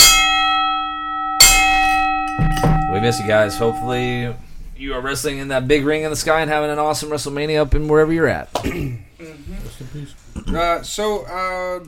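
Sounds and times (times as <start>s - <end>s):
bell struck with loud metallic clang and long ringing tone: 0.0s - 4.5s
speech: 3.0s - 11.8s.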